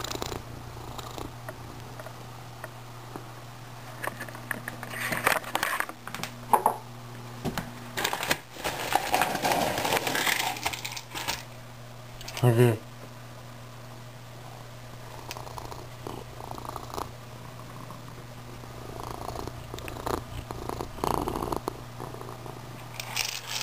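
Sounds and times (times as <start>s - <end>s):
orange cat purring: 0.0s - 2.2s, 14.9s - 22.9s
steady low hum: 0.0s - 23.6s.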